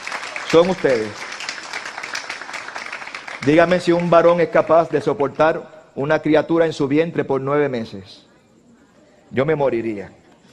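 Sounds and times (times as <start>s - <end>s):
applause from a sizable crowd: 0.0s - 4.5s
speech: 0.5s - 1.3s, 3.4s - 8.3s, 9.3s - 10.2s.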